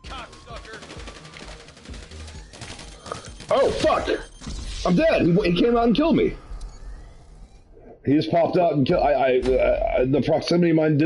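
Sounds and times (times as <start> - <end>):
video game gunfire bursts: 0.0 - 4.2
speech: 3.5 - 6.4, 8.0 - 11.0.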